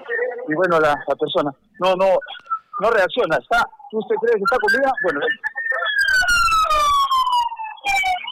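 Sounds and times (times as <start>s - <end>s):
speech: 0.4s - 5.6s
emergency medical ambulance siren wailing at an accident scene: 4.2s - 8.2s.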